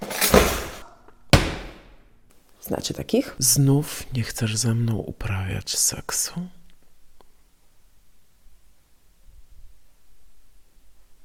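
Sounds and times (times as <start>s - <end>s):
doors and drawers slamming: 0.0s - 2.0s
speech: 2.7s - 6.6s.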